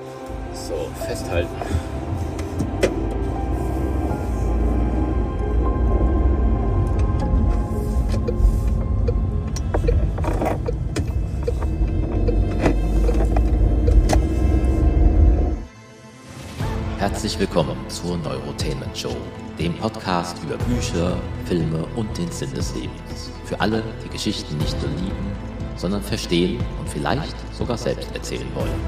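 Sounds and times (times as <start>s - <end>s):
car engine rumbling as the car drives off: 0.3s - 15.7s
speech: 0.7s - 2.2s, 17.3s - 28.8s.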